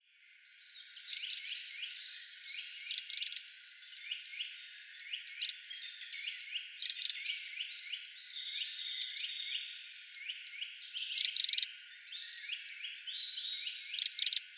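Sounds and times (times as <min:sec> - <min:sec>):
Eurasian wren Troglodytes troglodytes song with rapid high trills and ticking notes: 0:00.0 - 0:14.5.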